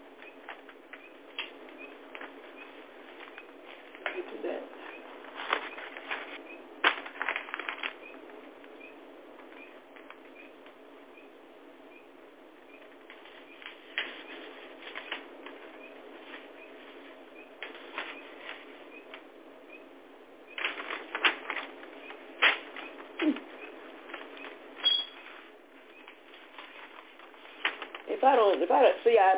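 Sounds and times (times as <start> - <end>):
paper pages rustling: 0.2 - 8.4, 12.9 - 19.2, 20.6 - 28.7
speech: 28.2 - 29.3.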